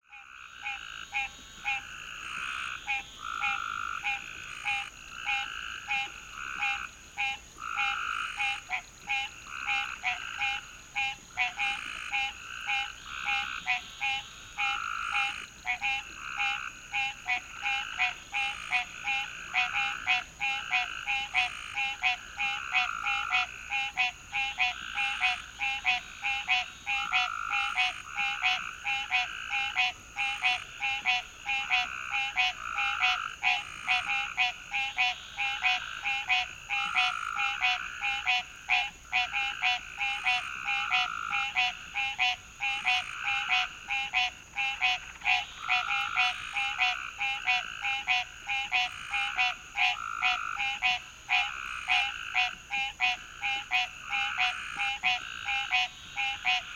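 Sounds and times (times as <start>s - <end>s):
frogs by a roadside: 0.0s - 56.7s.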